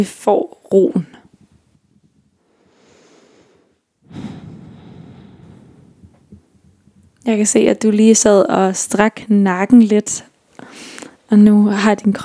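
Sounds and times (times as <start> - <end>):
speech: 0.0 - 1.2, 7.2 - 12.2
slow deep breathing: 2.4 - 6.8.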